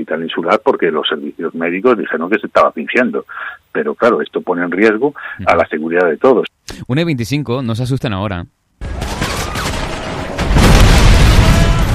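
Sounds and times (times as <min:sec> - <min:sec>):
speech: 0:00.0 - 0:08.6
video game gunfire: 0:08.8 - 0:11.9.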